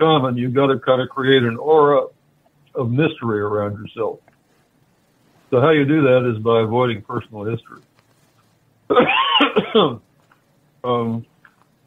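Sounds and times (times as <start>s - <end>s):
speech: 0.0s - 2.1s, 2.8s - 4.3s, 5.5s - 7.9s, 8.9s - 10.1s, 10.8s - 11.3s
person coughing: 8.9s - 10.0s
throat clearing: 8.9s - 10.0s.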